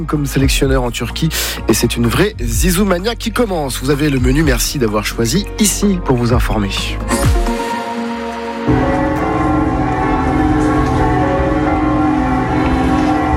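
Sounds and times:
speech: 0.0 - 7.5
church bells of village churches pealing: 7.7 - 13.3.

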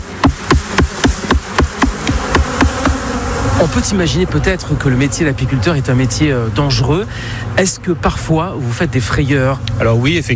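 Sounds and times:
male honeybee drone buzzing: 0.0 - 3.6
speech: 3.6 - 10.3.

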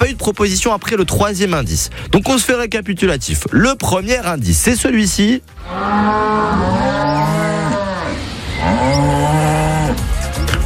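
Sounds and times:
speech: 0.1 - 7.4
cow mooing: 5.5 - 10.1.

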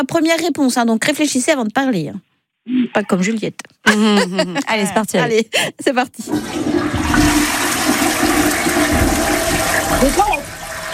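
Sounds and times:
speech: 0.0 - 7.4, 10.0 - 10.4
laughter: 3.8 - 5.5
toilet flushing: 6.2 - 10.9.

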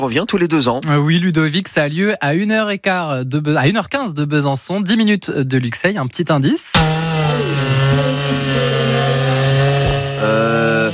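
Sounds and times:
speech: 0.0 - 8.7
chainsaw running at high revs: 6.7 - 10.9.

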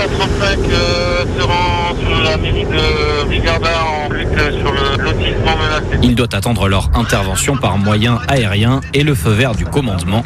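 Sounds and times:
strong wind of about 70 km/h buffeting the microphone: 0.0 - 7.6
speech: 5.6 - 10.2.

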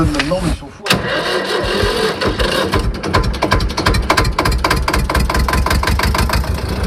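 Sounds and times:
speech: 0.0 - 1.3
old farm tractor engine starting and running: 0.0 - 6.8.

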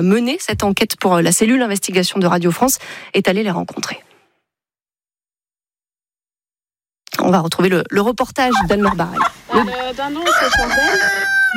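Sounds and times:
speech: 0.0 - 4.1, 7.3 - 11.5
chicken clucking: 8.5 - 11.5
rooster crowing: 10.2 - 11.5.

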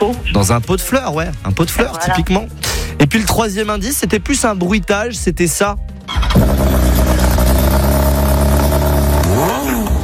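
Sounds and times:
speech: 0.1 - 6.5
engine roaring and revving through an exhaust pipe: 6.1 - 10.0.

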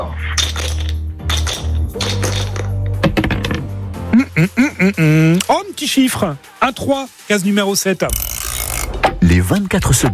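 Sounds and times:
board game dice clattering and tumbling across a hard surface: 0.4 - 3.6
speech: 4.4 - 8.3, 9.2 - 10.1.

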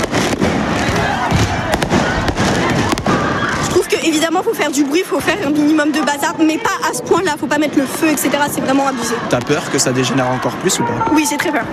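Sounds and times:
firework mortars being fired during street unrest: 0.0 - 3.8
speech: 4.3 - 11.7.

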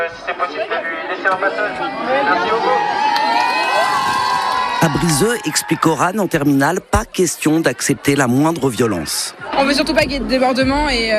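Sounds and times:
speech: 0.1 - 3.0, 4.8 - 11.1
crowd of protesting high school students cheering and shouting: 1.1 - 11.1
protesting high school students clapping: 3.1 - 6.1.

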